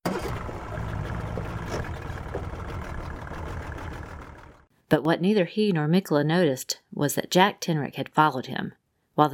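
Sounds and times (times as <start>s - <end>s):
boat motor droning on rough sea: 0.0s - 4.7s
churning water of a raging sea: 0.0s - 4.7s
speech: 4.9s - 9.3s.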